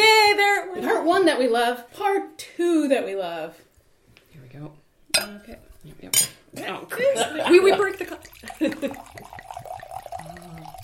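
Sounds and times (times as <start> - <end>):
speech: 1.2 - 3.7, 4.5 - 9.3
wine glugging from a bottle into a glass: 7.6 - 10.8.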